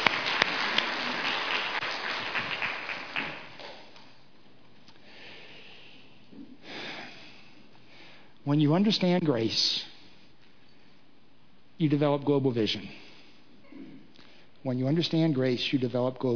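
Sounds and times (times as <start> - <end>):
crowd applauding: 0.0 - 3.8
speech: 8.5 - 9.9, 11.8 - 13.0, 14.6 - 16.3.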